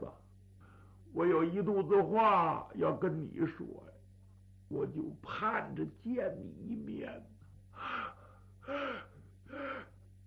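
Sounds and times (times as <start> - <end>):
low steady hum: 0.0 - 10.2
speech: 1.2 - 4.0, 4.7 - 8.0
voice imitating a weak man's heavy labored gasping for breath: 7.8 - 10.0.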